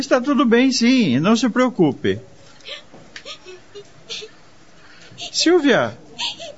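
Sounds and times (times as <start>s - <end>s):
speech: 0.0s - 3.4s, 5.2s - 6.4s
girl crying in breathy sobs and hiccuping gasps: 2.6s - 4.4s, 5.2s - 6.5s.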